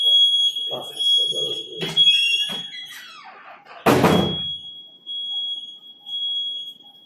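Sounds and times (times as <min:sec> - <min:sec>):
steady high-pitched electronic alarm tone from an alarm system: 0:00.0 - 0:07.0
loud thud: 0:03.8 - 0:04.5.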